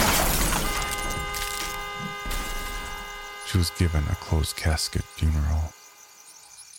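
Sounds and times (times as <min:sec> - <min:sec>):
Oldsmobile at 60 miles an hour slamming into a telephone pole: 0:00.0 - 0:03.0
glass shattering: 0:00.0 - 0:03.0
ringing metallic debris settling: 0:00.0 - 0:03.6
speech: 0:03.5 - 0:05.8.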